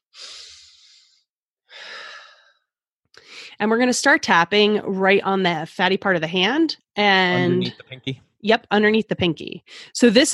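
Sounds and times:
deep breath in and out during a guided tapping relaxation exercise: 0:00.1 - 0:03.6
speech: 0:03.6 - 0:10.3.

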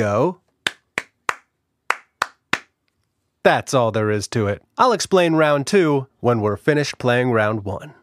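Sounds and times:
speech: 0:00.0 - 0:00.4, 0:03.4 - 0:08.0
hand claps in a clap-back rhythm game: 0:00.6 - 0:02.8.

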